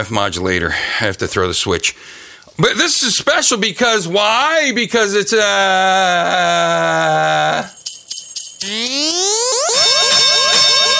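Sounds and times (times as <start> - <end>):
speech: 0.0 - 7.8, 8.6 - 9.9
synthetic sci-fi repeating upward chirps: 8.1 - 10.9
synthetic sci-fi rising electronic pitch sweep of an alien craft taking off: 8.6 - 10.9.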